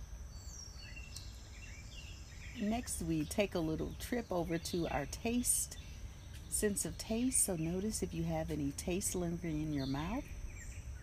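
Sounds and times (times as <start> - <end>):
low rumble: 0.0 - 11.0
birds chirping and trilling in chorus: 0.3 - 11.0
speech: 2.6 - 5.9, 6.5 - 10.4.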